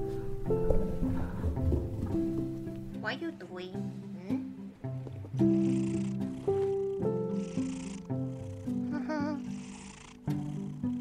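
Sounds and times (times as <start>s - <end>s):
cat purring: 0.0s - 3.0s, 4.2s - 10.9s
speech: 3.2s - 4.4s.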